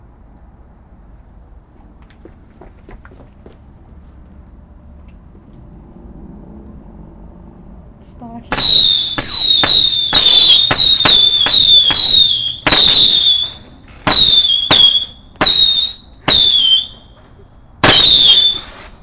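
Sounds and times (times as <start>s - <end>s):
ring of firecrackers exploding with shrill whistling screeches: 8.5s - 17.1s, 17.8s - 18.9s.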